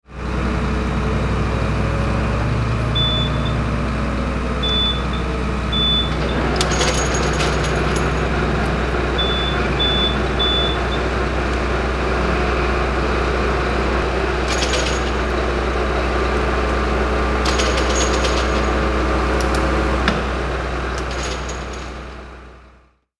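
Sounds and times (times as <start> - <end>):
truck crane moving and lifting: 0.1 - 22.8.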